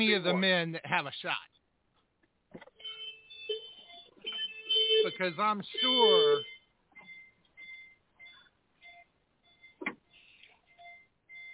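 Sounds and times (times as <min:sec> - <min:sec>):
speech: 0:00.0 - 0:01.6, 0:05.0 - 0:06.5
faint thin electronic beeps from an unmuted participant: 0:02.8 - 0:11.5
brief louder click or thump: 0:09.8 - 0:10.0.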